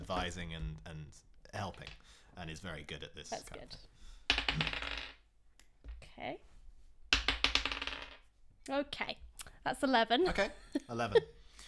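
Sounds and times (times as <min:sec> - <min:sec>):
speech: 0:00.1 - 0:04.8, 0:06.2 - 0:06.5, 0:08.7 - 0:11.4
dice clattering across a hard tabletop: 0:04.3 - 0:05.2, 0:07.1 - 0:08.2.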